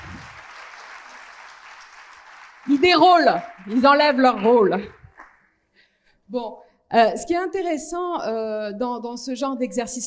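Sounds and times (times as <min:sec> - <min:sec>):
audience applause following a group role-play exercise: 0:00.0 - 0:05.4
speech: 0:02.6 - 0:05.0, 0:06.3 - 0:10.0.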